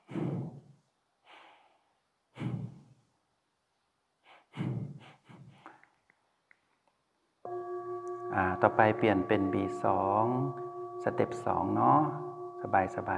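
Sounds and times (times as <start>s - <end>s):
short forceful sniffs through the nose: 0.0s - 0.6s, 1.2s - 2.8s, 4.2s - 5.8s
short ringing bell-like tone: 7.5s - 13.1s
speech: 8.4s - 13.1s.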